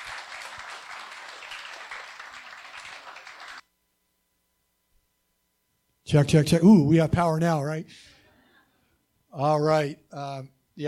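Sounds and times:
crowd applauding: 0.0s - 3.6s
speech: 6.1s - 8.2s, 9.4s - 10.8s.

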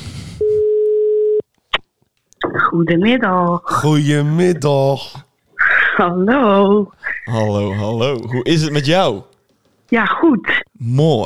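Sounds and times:
telephone tone while placing a call: 0.4s - 1.4s
speech: 2.7s - 5.3s, 6.0s - 9.3s, 9.9s - 11.2s.

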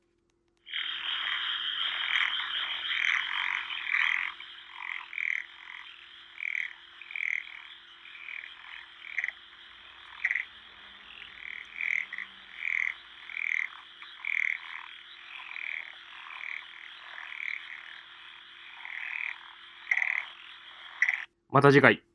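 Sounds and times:
dense chorus of frogs croaking: 0.6s - 21.4s
speech: 21.5s - 22.0s.

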